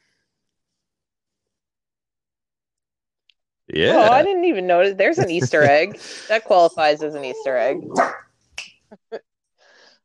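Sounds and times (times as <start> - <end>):
speech: 3.7 - 9.3
laughter: 3.8 - 4.3, 5.1 - 6.7
dog barking at a squirrel: 7.9 - 8.2.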